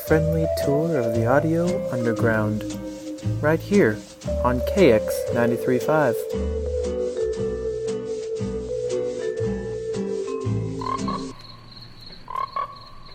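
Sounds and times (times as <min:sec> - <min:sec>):
higher chirps: 0:00.0 - 0:13.1
speech: 0:00.1 - 0:06.8
dense chorus of frogs croaking: 0:10.8 - 0:13.1.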